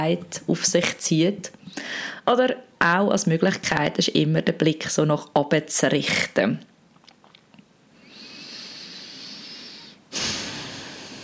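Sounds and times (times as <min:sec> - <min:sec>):
speech: 0:00.0 - 0:06.7
deep breath drawn into the belly: 0:01.7 - 0:02.2, 0:08.0 - 0:11.2.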